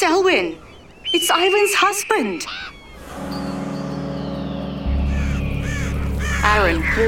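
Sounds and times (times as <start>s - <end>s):
birds cawing: 0.0s - 3.1s, 3.9s - 7.0s
speech: 0.0s - 3.3s, 6.4s - 7.0s
loud steady low rumble: 3.0s - 7.0s.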